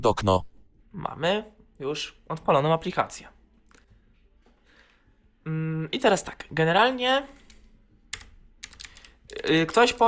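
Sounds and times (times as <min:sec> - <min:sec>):
speech: 0:00.0 - 0:03.4, 0:05.5 - 0:07.4, 0:09.3 - 0:10.0
computer keyboard keys and numeric keypad clacking: 0:07.5 - 0:10.0.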